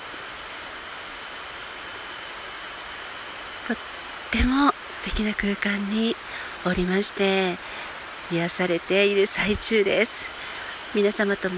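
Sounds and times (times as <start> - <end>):
distant stream flowing: 0.0 - 11.5
speech: 3.7 - 11.5.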